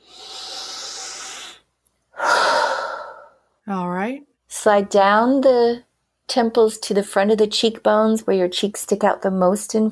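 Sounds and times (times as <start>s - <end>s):
deep breaths during a guided tapping exercise: 0.0s - 3.5s
speech: 3.7s - 9.9s.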